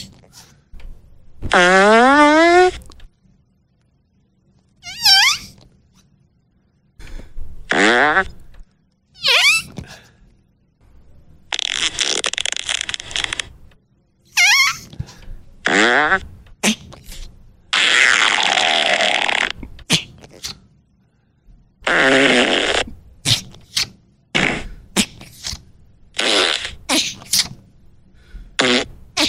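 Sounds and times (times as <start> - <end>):
synthetic fart sound effects: 1.4 - 2.9, 4.8 - 5.6, 7.6 - 8.4, 9.2 - 9.8, 11.5 - 13.5, 15.6 - 20.6, 21.8 - 27.6, 28.6 - 29.2.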